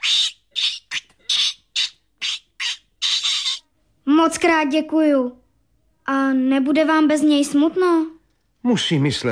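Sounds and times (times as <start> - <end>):
young lory parrot squawking: 0.0 - 3.7
speech: 4.2 - 5.4, 6.1 - 9.3.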